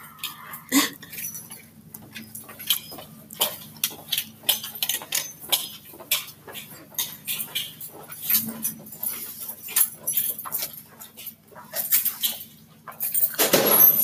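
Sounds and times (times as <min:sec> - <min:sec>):
keys jingling while someone walks: 0:00.1 - 0:14.0.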